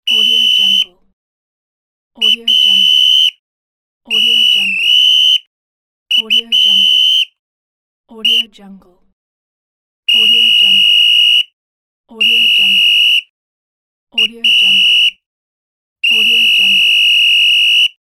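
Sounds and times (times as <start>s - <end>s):
referee whistle: 0.0s - 0.9s, 2.2s - 3.4s, 4.1s - 5.5s, 6.1s - 7.4s, 8.2s - 8.5s, 10.1s - 11.6s, 12.2s - 13.3s, 14.2s - 15.2s, 16.0s - 18.0s.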